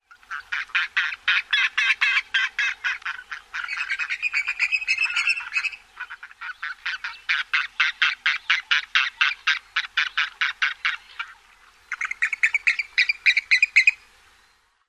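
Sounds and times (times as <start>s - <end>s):
Clark's Grebe calls: 0.0s - 14.2s.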